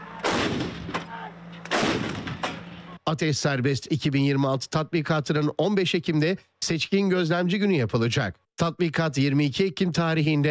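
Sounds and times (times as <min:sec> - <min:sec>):
Panther howitzer firing during a live-fire military exercise: 0:00.2 - 0:02.7
speech: 0:03.1 - 0:10.4.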